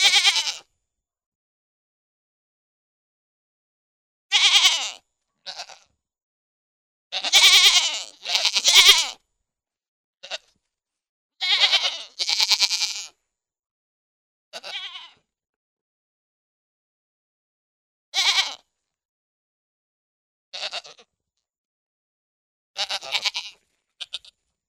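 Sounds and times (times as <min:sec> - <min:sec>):
pygmy goat bleating: 0:00.0 - 0:00.7, 0:04.3 - 0:05.9, 0:07.1 - 0:09.2, 0:10.2 - 0:10.6, 0:11.4 - 0:13.2, 0:14.6 - 0:15.2, 0:18.2 - 0:18.7, 0:20.6 - 0:21.1, 0:22.8 - 0:24.4.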